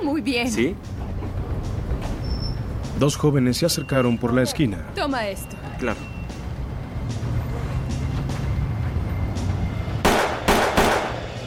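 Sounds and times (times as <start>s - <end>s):
low rumble of traffic: 0.0s - 11.4s
speech: 0.2s - 1.0s, 3.0s - 6.1s
gunshots: 10.0s - 11.3s.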